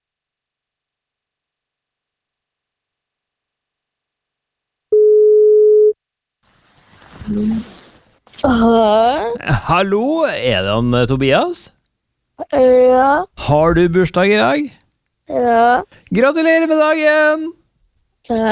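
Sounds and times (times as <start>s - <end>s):
telephone ringing tone of an outgoing call during a radio broadcast: 5.0s - 6.0s
brief rustle as the phone line is picked up: 6.5s - 8.3s
speech: 7.3s - 7.8s, 8.4s - 11.8s, 12.5s - 17.6s, 18.3s - 18.5s.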